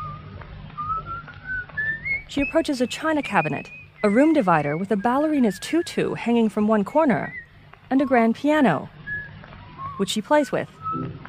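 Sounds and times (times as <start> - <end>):
man whistling a thin wavering tune: 0.0 - 4.8, 9.0 - 10.0, 10.8 - 11.2
low hum: 0.0 - 11.2
speech: 2.3 - 9.0, 10.0 - 11.2.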